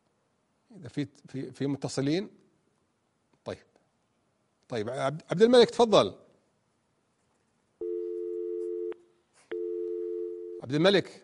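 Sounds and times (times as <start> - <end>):
speech: 0.7 - 2.4, 3.4 - 3.7, 4.7 - 6.2, 10.6 - 11.2
telephone line tone after a call disconnects: 7.8 - 10.6.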